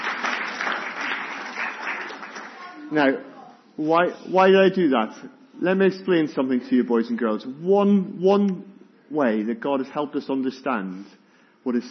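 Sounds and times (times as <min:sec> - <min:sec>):
audience applause: 0:00.0 - 0:02.9
speech: 0:02.9 - 0:11.8.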